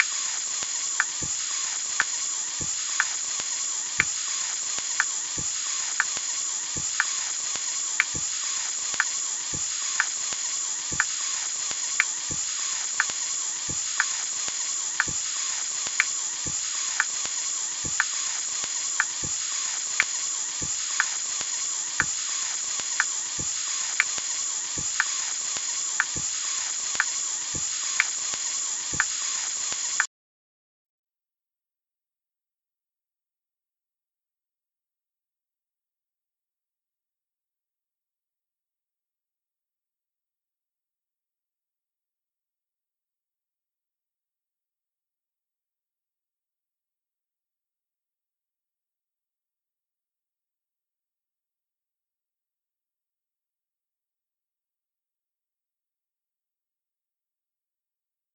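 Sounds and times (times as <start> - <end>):
rhythmic noise: 0.0 - 30.1.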